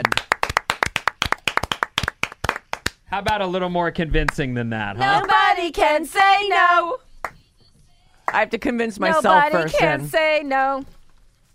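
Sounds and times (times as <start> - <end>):
hands clapping: 0.0 - 3.4
speech: 3.1 - 7.1, 8.3 - 11.0.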